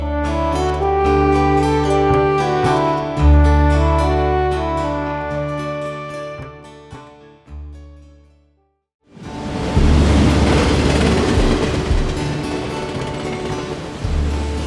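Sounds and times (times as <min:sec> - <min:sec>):
short musical snippet: 0:00.0 - 0:06.9, 0:09.4 - 0:14.6
train rumbling over rail switches: 0:09.5 - 0:14.6.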